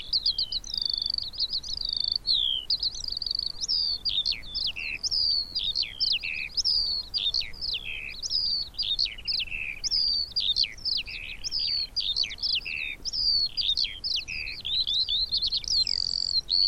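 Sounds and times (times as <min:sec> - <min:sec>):
Eurasian skylark song of high chirps and down-slurred notes: 0:00.0 - 0:16.6.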